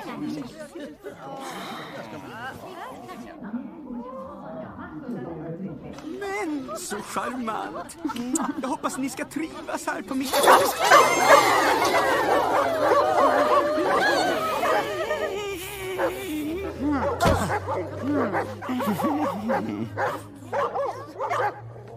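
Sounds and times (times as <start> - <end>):
laughter: 0.0 - 3.3, 6.2 - 21.9
speech: 0.2 - 3.6, 4.9 - 13.4, 17.8 - 20.8
several dogs barking and yipping: 10.2 - 15.4, 17.0 - 21.9.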